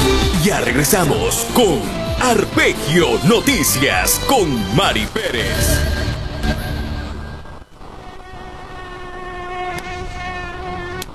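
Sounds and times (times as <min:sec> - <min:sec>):
speech: 0:00.4 - 0:06.7
mosquitoes buzzing: 0:07.6 - 0:11.1.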